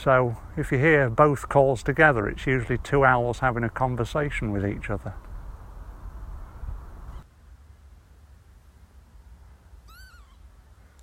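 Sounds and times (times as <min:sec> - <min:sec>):
speech: 0:00.0 - 0:05.2
low rumbling noise: 0:00.0 - 0:11.0
Northern Lapwing flight call flying overhead: 0:09.8 - 0:10.5.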